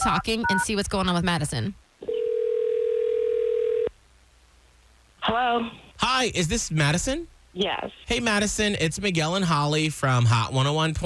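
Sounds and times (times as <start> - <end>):
speech: 0.0 - 1.8, 5.3 - 11.0
faint hiss: 0.0 - 11.0
telephone dial tone while placing a phone call: 2.1 - 3.9.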